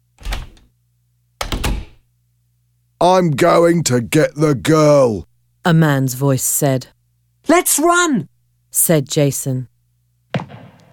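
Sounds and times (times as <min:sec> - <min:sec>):
faint steady hum: 0:00.0 - 0:10.9
front door opening and shutting: 0:00.2 - 0:00.7, 0:01.4 - 0:02.0
speech: 0:03.0 - 0:09.7.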